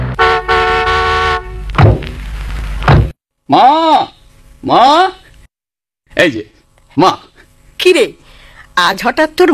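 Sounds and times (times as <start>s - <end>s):
car horn: 0.2s - 1.8s
dull thuds: 1.7s - 3.2s
speech: 3.5s - 5.2s, 6.2s - 7.3s, 7.8s - 9.5s.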